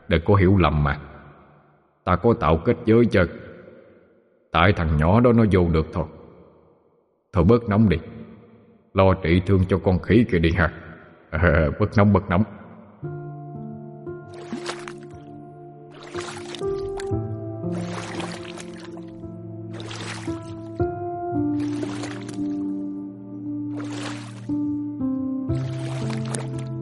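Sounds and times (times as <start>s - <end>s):
speech: 0.1s - 1.1s, 2.1s - 3.4s, 4.5s - 6.2s, 7.3s - 8.2s, 9.0s - 13.2s
music backdrop: 13.0s - 26.8s
small wooden boat swishing through water pulling away from a landing: 14.3s - 15.2s, 15.9s - 20.8s, 21.5s - 22.7s, 23.7s - 24.6s, 25.5s - 26.8s.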